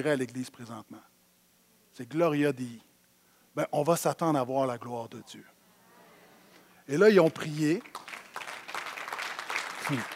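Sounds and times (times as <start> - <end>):
speech: 0.0 - 1.1, 2.0 - 2.9, 3.6 - 5.5, 6.9 - 8.0, 9.9 - 10.1
crowd applauding: 7.6 - 10.1.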